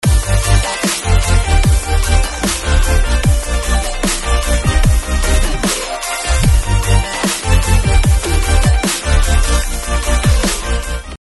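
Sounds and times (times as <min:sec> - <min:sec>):
bass with automation: 0:00.0 - 0:11.2.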